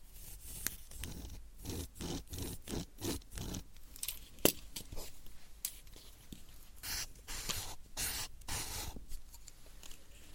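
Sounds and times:
pen writing on paper in quick irregular strokes: 0.2s - 3.7s, 6.8s - 8.9s.

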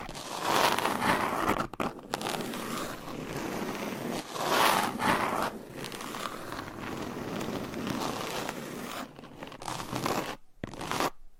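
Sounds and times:
long nails scratching across a textured surface: 0.0s - 11.3s.

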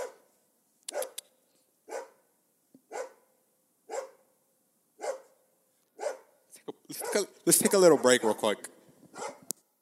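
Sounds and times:
dog barking sharply: 0.0s - 0.3s, 0.9s - 1.2s, 1.9s - 2.2s, 2.9s - 3.3s, 3.9s - 4.3s, 5.0s - 5.4s, 6.0s - 9.5s
speech: 6.9s - 8.8s.

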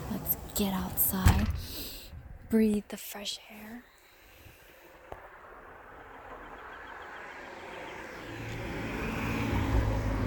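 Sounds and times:
speech: 0.6s - 1.8s, 2.5s - 3.9s
cars passing by outdoors: 4.2s - 10.2s.

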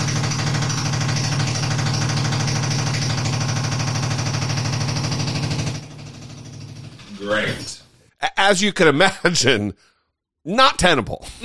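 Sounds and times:
jackhammer pounding outside a studio window: 0.0s - 7.7s
speech: 7.3s - 11.4s.

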